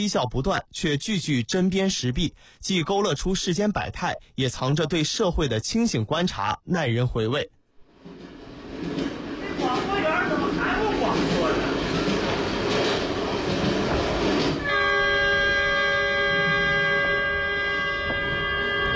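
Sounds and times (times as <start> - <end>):
speech: 0.0 - 8.2
passenger train rumbling and clattering: 8.0 - 18.9
sustained tonal horn-like sound: 14.4 - 18.9.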